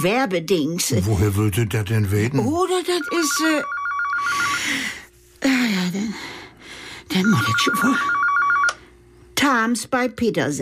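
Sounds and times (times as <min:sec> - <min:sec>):
speech: 0:00.0 - 0:06.4, 0:07.1 - 0:08.2, 0:09.4 - 0:10.6
electronic telephone ring: 0:02.9 - 0:04.9, 0:07.1 - 0:09.0.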